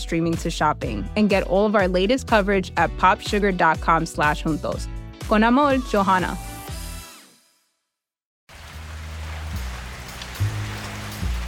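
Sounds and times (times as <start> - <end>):
speech: 0.0 - 6.5
heavy rain pouring: 8.5 - 11.4
water dripping: 8.5 - 11.4.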